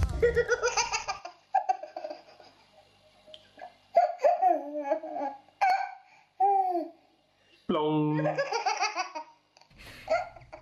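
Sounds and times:
baby laughing: 0:00.2 - 0:02.6, 0:03.9 - 0:06.9, 0:08.2 - 0:09.3, 0:10.1 - 0:10.5
baby babbling: 0:04.0 - 0:07.0.

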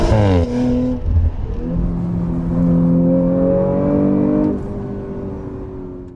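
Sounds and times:
V6 car engine revving hard while accelerating: 0:00.0 - 0:06.1
speech: 0:00.1 - 0:00.6.

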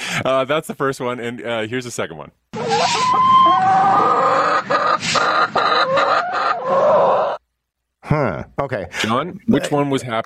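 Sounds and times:
speech: 0:00.2 - 0:07.4, 0:08.0 - 0:10.2
chicken clucking and squawking: 0:02.6 - 0:07.4.

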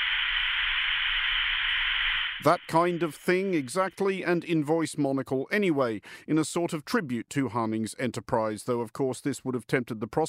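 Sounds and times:
white noise static hiss: 0:00.0 - 0:04.2
speech: 0:02.4 - 0:10.2.

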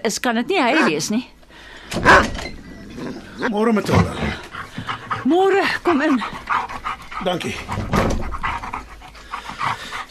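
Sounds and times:
speech: 0:00.0 - 0:04.4, 0:05.2 - 0:08.1
dog panting excitedly: 0:02.1 - 0:10.0.

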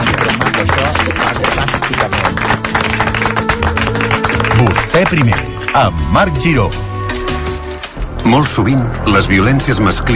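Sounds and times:
crowd applauding with dense clapping: 0:00.0 - 0:07.9
speech: 0:05.0 - 0:06.9, 0:08.2 - 0:10.1.

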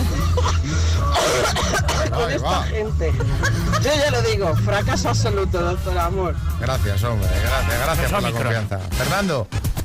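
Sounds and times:
harsh throat clearing: 0:00.0 - 0:02.4
person in a coughing fit brought on by laughing hard: 0:00.0 - 0:02.4
laughter: 0:00.0 - 0:05.2
speech: 0:02.2 - 0:09.7.

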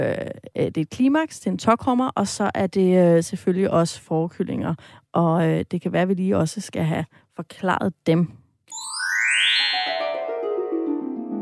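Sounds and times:
speech: 0:00.0 - 0:08.9
electronic jingle introducing recurring segments: 0:08.7 - 0:11.4.

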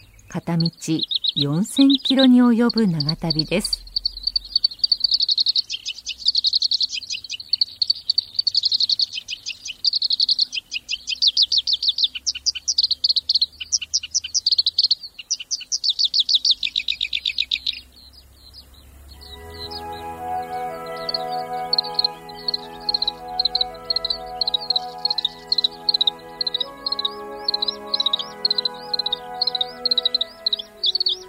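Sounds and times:
black-browed reed warbler singing at the Sarakitanai River in Hokkaido Japan: 0:00.0 - 0:31.2
speech: 0:00.3 - 0:03.9
soft tonal stacked hum: 0:19.1 - 0:31.2.

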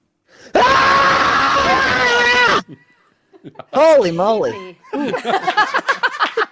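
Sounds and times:
breath: 0:00.2 - 0:00.6
loud raw human scream: 0:00.5 - 0:02.8
laughter: 0:02.7 - 0:06.5
speech: 0:03.8 - 0:06.0.

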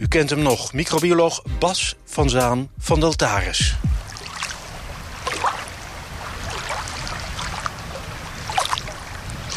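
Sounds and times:
speech: 0:00.0 - 0:03.9
gentle water washing at a large lake with a small beach: 0:03.8 - 0:09.5.

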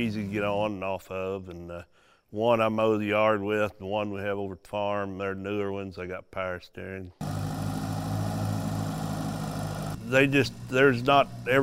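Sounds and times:
speech: 0:00.0 - 0:07.4, 0:10.1 - 0:11.6
small farm tractor engine idling: 0:07.2 - 0:11.6.

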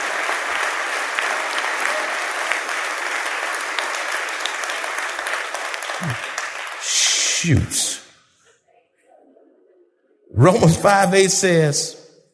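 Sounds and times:
large crowd applauding in praise to God: 0:00.0 - 0:08.0
speech: 0:06.0 - 0:07.9, 0:10.4 - 0:12.0.

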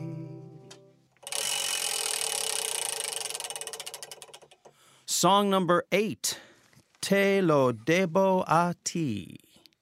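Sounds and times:
prize wheel spinning with ticking clicks: 0:01.3 - 0:04.6
speech: 0:05.2 - 0:06.5, 0:07.1 - 0:09.4.

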